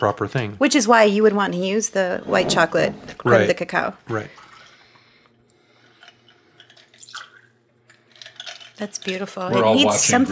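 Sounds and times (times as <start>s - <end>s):
speech: 0.0s - 4.4s, 8.8s - 10.3s
liquid trickling and splashing: 4.3s - 5.0s, 6.0s - 9.1s
clear cocktail pouring into glasses: 6.6s - 9.2s.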